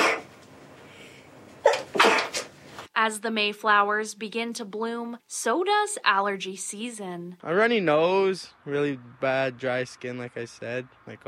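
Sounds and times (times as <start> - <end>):
person sneezing from pollen allergy: 0.0 - 0.3, 1.6 - 2.5
breathing: 0.8 - 1.4
speech: 3.0 - 11.2.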